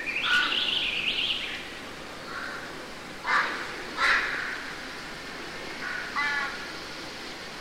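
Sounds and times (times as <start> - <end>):
crow cawing in woods: 0.2 - 0.8, 2.3 - 4.7, 5.8 - 6.7.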